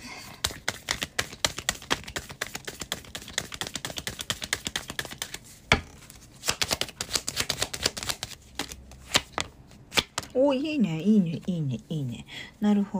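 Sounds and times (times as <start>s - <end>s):
tarot cards being shuffled: 0.4s - 10.4s
speech: 10.4s - 12.9s.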